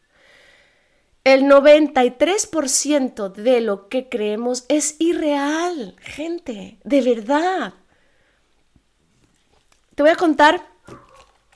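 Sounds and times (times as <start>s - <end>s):
speech: 1.3s - 7.8s, 10.0s - 11.0s
dog barking: 10.8s - 11.4s.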